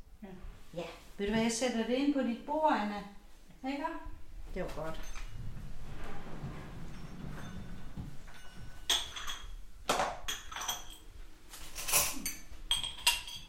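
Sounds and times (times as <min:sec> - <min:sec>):
speech: 0:00.2 - 0:05.2
glasses clinking against a table or tray: 0:06.8 - 0:11.2, 0:11.8 - 0:13.4.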